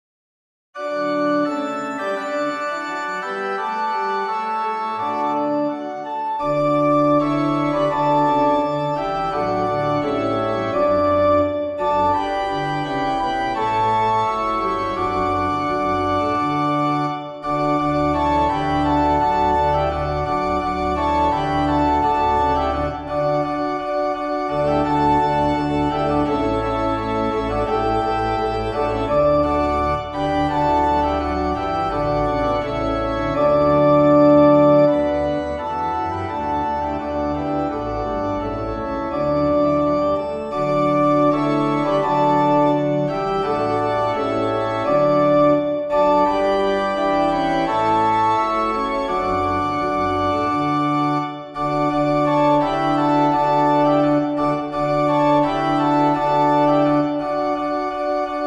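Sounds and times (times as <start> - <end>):
organ: 0.8 - 58.4.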